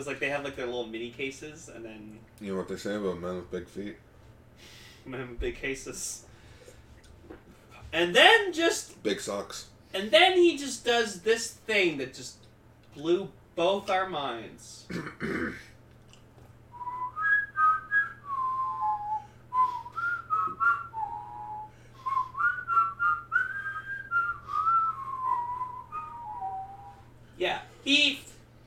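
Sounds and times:
speech: 0.0 - 6.3, 7.3 - 12.4, 13.0 - 15.7
person whistling a lilting theme tune melody: 16.8 - 27.0.

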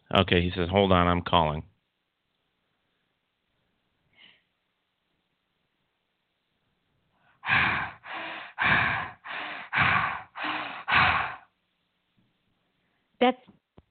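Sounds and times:
speech: 0.2 - 1.7, 13.2 - 13.6
heavy breathing over a phone line: 7.4 - 11.5.

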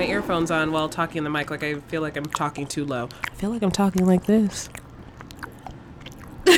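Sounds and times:
speech: 0.0 - 4.8
someone chewing a caramel candy bar: 0.2 - 6.5.

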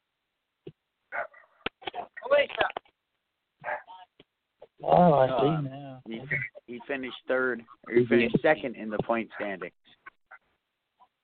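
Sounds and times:
dog barking: 1.1 - 1.6, 3.6 - 4.0
speech: 5.0 - 10.0.

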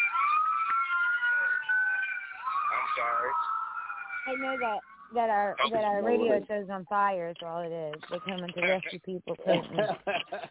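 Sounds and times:
ambulance siren wailing: 0.0 - 6.2
speech: 3.0 - 3.6, 4.2 - 10.5
laughter: 9.4 - 10.5.

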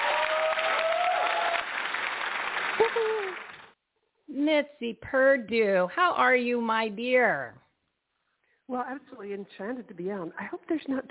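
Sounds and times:
people whooping: 0.0 - 3.6
crowd applauding: 0.0 - 3.8
speech: 2.8 - 3.5, 4.3 - 7.6, 8.7 - 11.0.

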